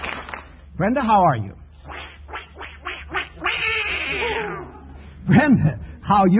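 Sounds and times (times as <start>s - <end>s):
speech: 0.8s - 1.6s, 4.1s - 6.3s
wind-up toy duck quacking: 1.9s - 4.4s.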